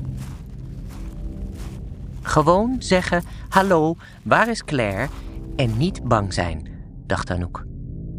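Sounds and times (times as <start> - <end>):
shoe soles crunching on gravel while walking to a front door: 0.0 - 6.1
steady low rumbling background: 0.0 - 8.1
speech: 2.3 - 7.7.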